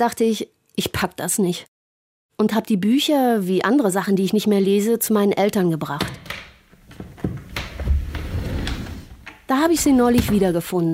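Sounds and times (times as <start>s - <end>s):
speech: 0.0s - 1.7s, 2.4s - 6.3s, 9.5s - 10.9s
wooden bottom drawer of a child's wardrobe sliding open: 6.8s - 10.6s.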